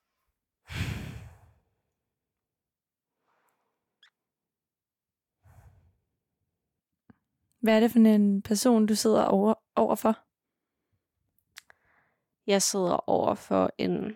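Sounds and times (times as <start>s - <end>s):
person breathing slowly and deeply: 0.7s - 1.8s
speech: 7.6s - 10.3s, 12.5s - 14.1s.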